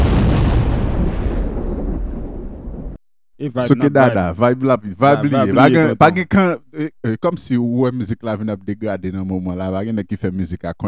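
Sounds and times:
bomb explosion sound effect: 0.0 - 3.0
speech: 3.4 - 10.8.

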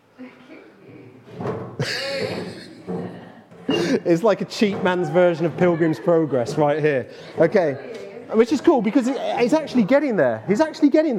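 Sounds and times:
faint voices: 0.2 - 11.1
chair scraping and thumping across a hard floor: 1.2 - 5.8
laughter: 1.8 - 7.8
speech: 3.9 - 11.1.

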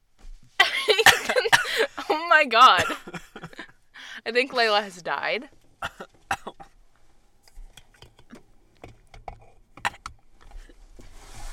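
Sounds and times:
person coughing and clearing throat: 0.7 - 3.7, 5.8 - 6.8
speech: 2.4 - 3.1, 4.2 - 5.6.

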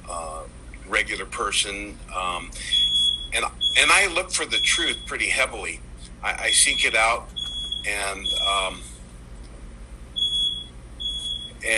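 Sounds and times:
speech: 1.0 - 8.9
high-pitched electronic beeps: 2.6 - 5.1, 6.5 - 8.8, 10.2 - 11.6.

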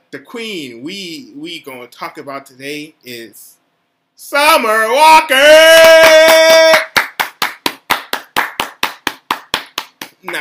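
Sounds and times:
speech: 0.1 - 3.6, 4.2 - 6.7, 10.2 - 10.4
sharp hand claps at a brisk even tempo: 5.7 - 10.4.

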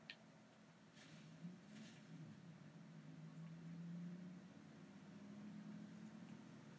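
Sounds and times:
faint clicks: 0.0 - 0.6
car engine droning in a video game: 0.6 - 6.7.

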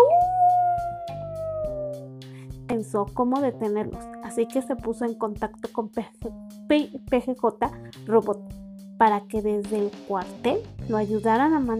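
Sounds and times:
voice imitating a long wolf howl: 0.0 - 2.1
quiet music: 0.0 - 11.7
speech: 2.8 - 11.7.

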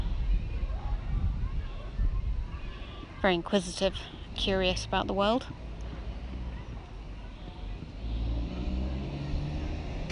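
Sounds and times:
outdoor wind noise: 0.0 - 8.0
enormous lorry driving past around the corner: 0.0 - 10.0
speech: 3.2 - 5.6.

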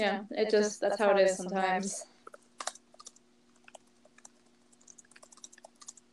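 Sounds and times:
speech: 0.0 - 2.1
faint constant electrical hum: 0.0 - 6.1
rapid irregular typing on a computer keyboard: 2.2 - 6.1.

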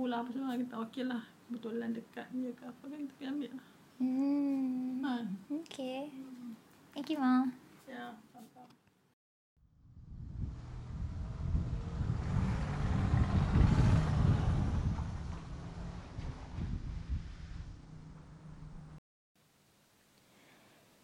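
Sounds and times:
speech: 0.0 - 6.4, 7.0 - 8.8
low rumble of a car interior as the car pulls over: 9.8 - 19.0.

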